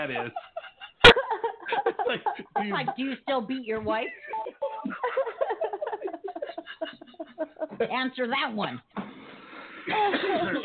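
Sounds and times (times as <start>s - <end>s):
speech: 0.0s - 0.6s, 1.7s - 4.2s, 7.7s - 8.9s, 9.9s - 10.6s
laughter: 0.0s - 7.9s, 9.9s - 10.6s
person coughing: 9.9s - 10.6s.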